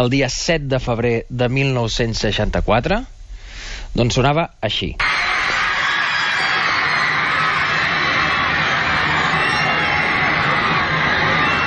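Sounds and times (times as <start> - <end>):
speech: 0.0 - 3.2, 3.9 - 5.1
large crowd of teenagers screaming at airport: 5.0 - 11.6.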